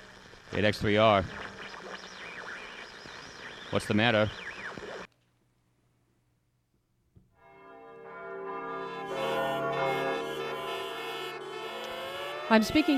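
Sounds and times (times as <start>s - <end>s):
speech: 0.5s - 1.5s, 3.7s - 4.5s, 12.5s - 12.9s
church bells ringing a warning: 7.4s - 12.9s.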